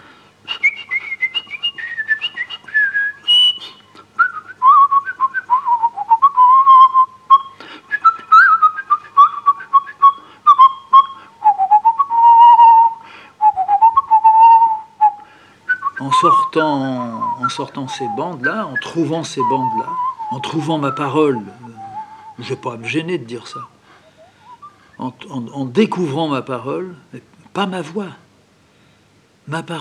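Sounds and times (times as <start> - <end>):
person whistling a lilting musette melody: 0.5 - 23.0, 24.2 - 24.8
speech: 16.6 - 21.7, 22.4 - 23.7, 25.0 - 28.2, 29.5 - 29.7.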